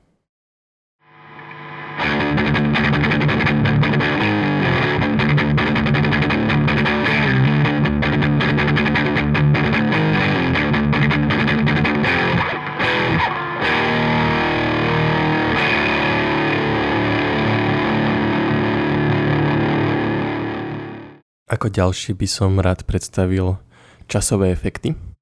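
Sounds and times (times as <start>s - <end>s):
heavily distorted electric guitar through a distortion effect playing chords and riffs: 1.1s - 21.2s
speech: 21.6s - 25.1s.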